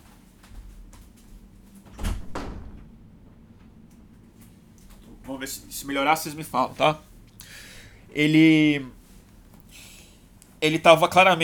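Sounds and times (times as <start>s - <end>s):
door being opened: 1.8s - 7.3s
soft knocks: 1.9s - 5.3s
louder thump of door latch and frame: 2.0s - 4.0s
speech: 5.3s - 7.1s, 8.1s - 9.0s, 10.6s - 11.4s.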